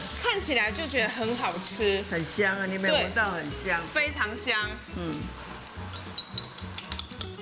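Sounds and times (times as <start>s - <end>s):
onions sizzling as they fry in a pan over low heat: 0.0s - 7.4s
speech: 0.4s - 5.5s
utensil clinking against the pan: 5.9s - 7.4s.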